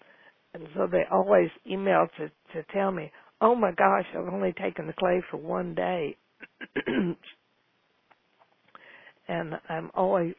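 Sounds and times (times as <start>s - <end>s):
speech: 0.6s - 7.4s, 9.3s - 10.3s
person clearing throat: 6.4s - 7.3s.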